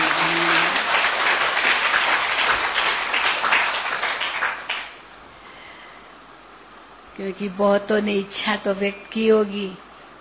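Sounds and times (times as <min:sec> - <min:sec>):
crowd applauding: 0:00.0 - 0:05.0
speech: 0:07.2 - 0:09.8.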